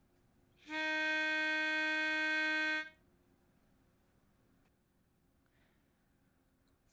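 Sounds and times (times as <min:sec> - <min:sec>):
baritone saxophone playing alone: 0:00.7 - 0:03.0.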